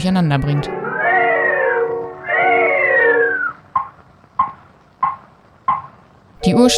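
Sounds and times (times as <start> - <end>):
speech: 0.0 - 0.8, 6.4 - 6.7
wavering cartoon cat yowls from a 1929 animated cartoon: 0.8 - 3.6
sharp evenly spaced knocks: 3.7 - 6.0.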